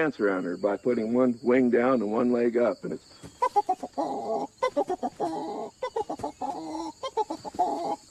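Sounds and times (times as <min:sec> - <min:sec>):
speech: 0:00.0 - 0:05.4
faint outdoor hiss: 0:00.0 - 0:08.0
chickens clucking: 0:02.8 - 0:08.0.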